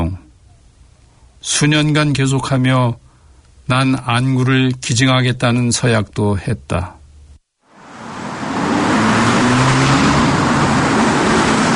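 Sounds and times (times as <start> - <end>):
speech: 1.4 - 3.0, 3.7 - 7.0
buses passing: 7.7 - 11.7.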